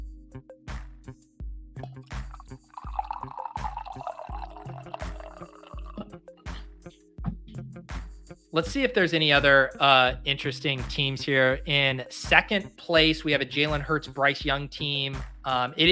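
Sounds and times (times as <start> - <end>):
music with a steady thumping beat: 0.0 - 2.6, 6.0 - 15.9
coffee pouring into a cup: 1.8 - 6.1
speech: 8.5 - 15.9.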